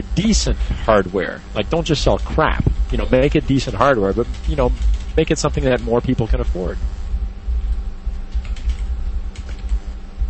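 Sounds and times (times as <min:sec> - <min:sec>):
speech: 0:00.2 - 0:07.0
computer keyboard typing: 0:04.2 - 0:05.8, 0:08.3 - 0:09.8.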